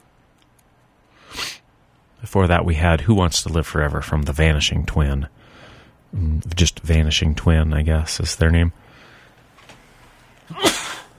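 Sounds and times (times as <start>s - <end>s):
person sneezing: 1.3s - 1.6s, 10.5s - 11.1s
speech: 2.2s - 5.4s, 6.1s - 8.8s.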